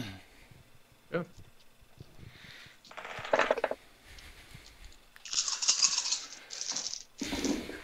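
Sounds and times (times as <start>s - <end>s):
dice rattling and rolling: 2.9s - 3.8s, 5.2s - 7.1s.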